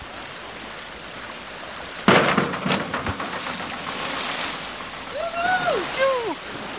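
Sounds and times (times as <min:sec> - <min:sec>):
churning sloshing pool water: 0:01.4 - 0:06.7
person doing a cannonball jump into pool water: 0:02.0 - 0:06.0
voices calling out: 0:05.0 - 0:06.5.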